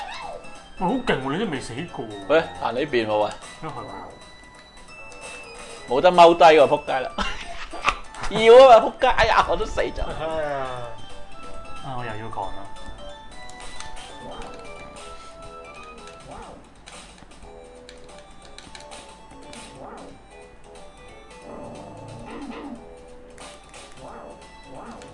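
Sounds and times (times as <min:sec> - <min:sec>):
speech: 0:00.8 - 0:04.4, 0:05.9 - 0:07.4, 0:08.3 - 0:10.9, 0:11.8 - 0:12.8
dog whimpering: 0:21.4 - 0:22.9.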